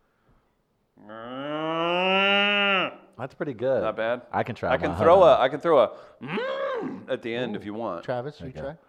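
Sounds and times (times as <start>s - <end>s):
person imitating a cow mooing: 1.0s - 3.2s, 6.2s - 7.1s
speech: 3.2s - 8.8s.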